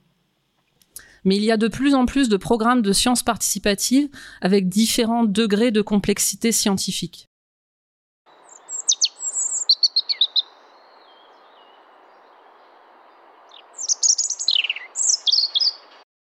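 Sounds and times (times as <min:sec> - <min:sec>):
soft outdoor hiss: 0:00.0 - 0:04.9, 0:08.3 - 0:16.0
speech: 0:01.2 - 0:07.3
European robin singing: 0:08.3 - 0:16.0.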